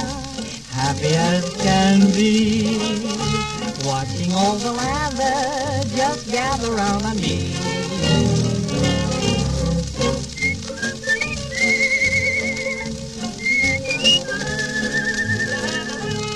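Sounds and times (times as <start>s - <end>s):
musical backing of a song: 0.0s - 16.3s
speech: 0.8s - 8.9s
whistled melody: 7.9s - 16.3s.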